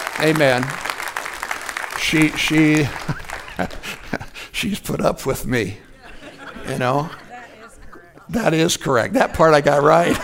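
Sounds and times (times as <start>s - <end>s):
crowd applauding: 0.0s - 4.4s
speech: 0.2s - 0.8s, 2.0s - 5.8s, 6.6s - 7.2s, 8.3s - 10.2s
laughter: 2.2s - 4.7s, 5.4s - 10.2s.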